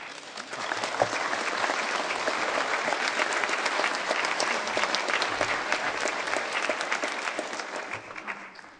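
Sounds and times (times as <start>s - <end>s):
audience clapping after a talk: 0.0s - 8.7s.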